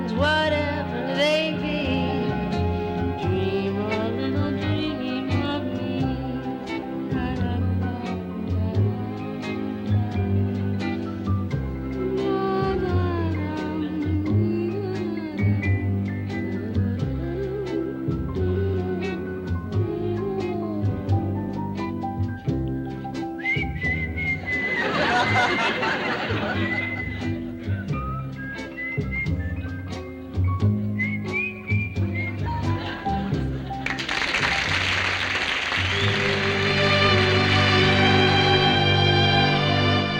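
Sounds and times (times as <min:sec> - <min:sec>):
steady band accompaniment: 0:00.0 - 0:40.1
speech: 0:00.1 - 0:00.6
person whistling a sweet wavering melody: 0:23.0 - 0:25.8, 0:26.8 - 0:32.8, 0:35.8 - 0:37.6
laughter: 0:24.4 - 0:28.1, 0:32.5 - 0:37.5.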